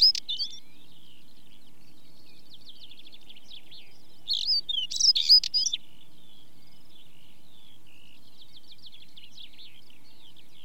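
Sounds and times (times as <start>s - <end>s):
faint steady trilling and chirping from other birds: 0.0s - 10.6s.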